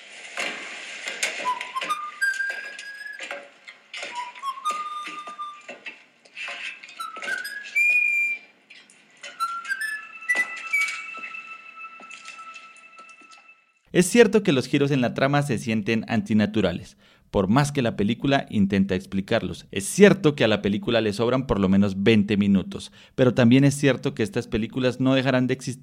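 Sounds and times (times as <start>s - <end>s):
sharp clicks and crackles: 0.0s - 11.4s
person whistling a bouncy adventure film theme: 1.4s - 3.2s, 4.1s - 5.7s, 7.0s - 8.4s, 9.4s - 11.9s
speech: 14.0s - 25.8s.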